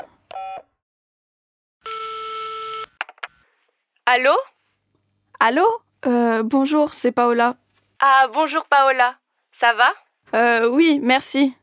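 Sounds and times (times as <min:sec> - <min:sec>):
mobile phone steady electronic dial tone: 0:01.9 - 0:03.1
speech: 0:04.1 - 0:04.5, 0:05.4 - 0:11.6.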